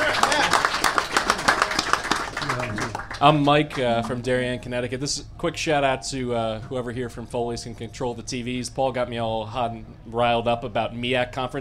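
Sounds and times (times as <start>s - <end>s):
crowd murmur: 0.0s - 3.0s
room full of people applauding: 0.0s - 4.2s
speech: 3.2s - 11.6s.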